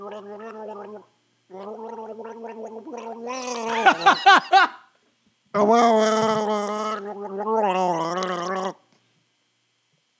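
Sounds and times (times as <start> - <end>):
person gargling mouthwash while voicing a tune: 0.0 - 4.1, 5.6 - 8.8
laughter: 3.7 - 4.8.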